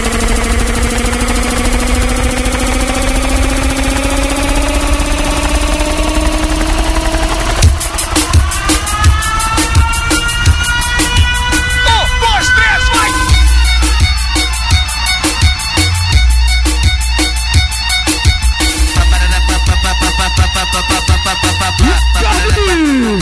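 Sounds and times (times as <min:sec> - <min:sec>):
engine revving as it accelerates: 0:00.0 - 0:17.4, 0:18.2 - 0:23.2
pounding beat of a live DJ set: 0:05.3 - 0:23.2.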